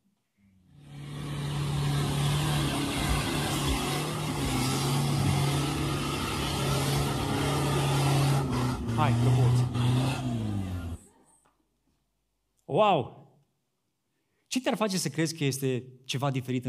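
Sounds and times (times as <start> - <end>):
car engine starting and running: 0.7 - 11.1
speech: 9.0 - 9.7, 12.7 - 13.2, 14.5 - 16.6.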